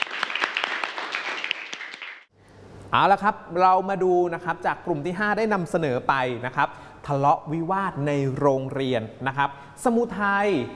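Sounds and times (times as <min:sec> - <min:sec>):
audience applause after a group presentation: 0:00.0 - 0:02.3
speech: 0:02.9 - 0:10.7.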